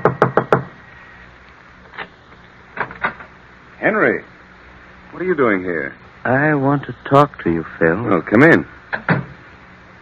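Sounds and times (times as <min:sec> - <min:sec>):
knocking on a door: 0:00.0 - 0:00.7
speech: 0:03.8 - 0:04.4, 0:05.2 - 0:09.1.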